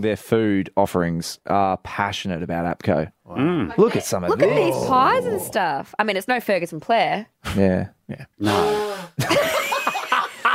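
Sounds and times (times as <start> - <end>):
speech: 0.0 - 9.7
laughter: 4.3 - 5.6, 9.2 - 10.5
person blowing nose: 8.4 - 9.2.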